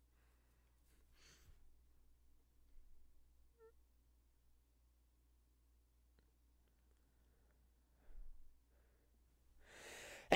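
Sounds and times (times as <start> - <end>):
faint breathing: 0.1 - 1.7, 6.9 - 10.3
person sneezing: 10.0 - 10.3.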